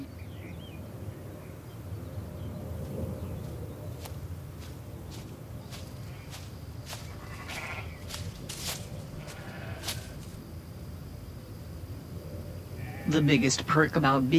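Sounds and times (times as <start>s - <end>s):
goats bleating in a barnyard: 7.1s - 8.0s, 9.2s - 10.4s, 12.8s - 13.4s
speech: 13.1s - 14.3s.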